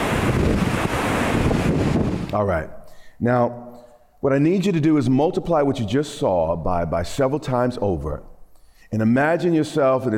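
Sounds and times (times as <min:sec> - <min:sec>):
waves crashing on open lake water: 0:00.0 - 0:02.3
storm wind roaring across the microphone on a lake: 0:00.0 - 0:02.7
speech: 0:02.4 - 0:08.3, 0:08.9 - 0:10.1.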